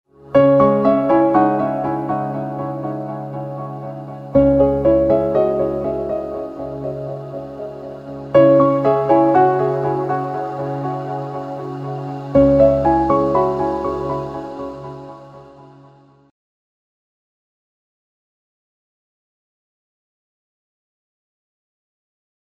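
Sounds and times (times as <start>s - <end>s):
gentle piano ringtone: 0.4s - 15.3s.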